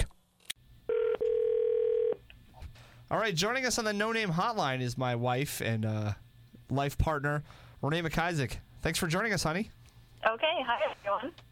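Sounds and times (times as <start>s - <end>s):
telephone dialing tones: 0.9s - 2.2s
speech: 3.1s - 11.5s.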